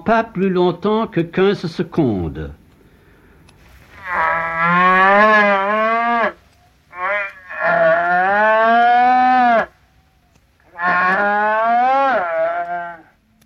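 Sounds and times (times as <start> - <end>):
speech: 0.0 - 2.6
cow mooing while giving birth: 3.9 - 9.8, 10.7 - 13.2.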